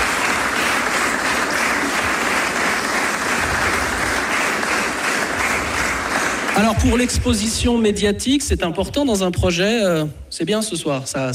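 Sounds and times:
audience applauding: 0.0 - 7.9
speech: 6.6 - 11.3.

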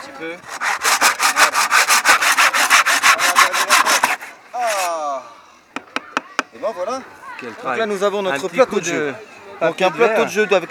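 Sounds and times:
speech: 0.2 - 0.8, 6.7 - 10.6
saw cutting through a wooden board in back-and-forth strokes: 0.4 - 4.9.

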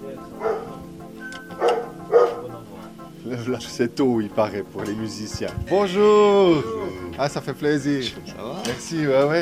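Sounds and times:
dog barking: 0.4 - 0.8, 1.5 - 2.5
speech: 3.4 - 9.4.

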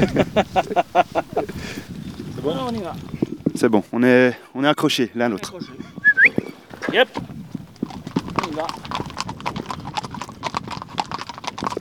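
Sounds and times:
laughter: 0.0 - 1.9
hooves of a seven-year-old mare clip-clopping: 0.0 - 3.6, 5.3 - 11.7
speech: 0.0 - 5.9, 6.9 - 7.3, 8.6 - 9.0.

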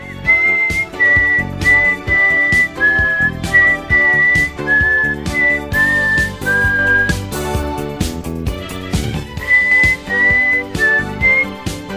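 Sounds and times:
woman whistling off-key along to a theme tune: 0.0 - 7.2, 9.4 - 11.6
theme music with rhythmic accompaniment: 0.0 - 11.9.

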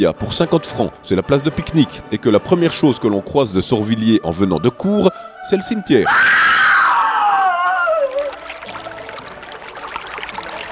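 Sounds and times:
speech: 0.0 - 6.6
loud high descending cry: 6.0 - 8.3
river water rushing: 8.1 - 10.7.

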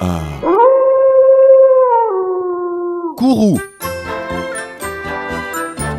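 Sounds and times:
wolf howling: 0.4 - 3.2
speech: 3.4 - 3.7.

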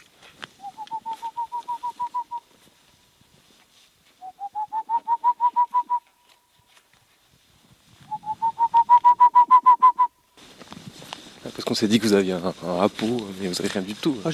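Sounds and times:
bird calling at night with clear hooting notes: 0.6 - 2.5, 4.2 - 6.1, 8.1 - 10.1
speech: 11.7 - 14.3.

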